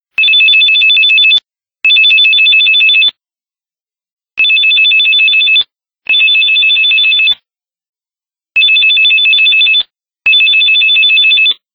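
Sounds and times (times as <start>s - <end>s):
phone ringtone: 0.2s - 3.2s, 4.4s - 7.4s, 8.6s - 11.6s.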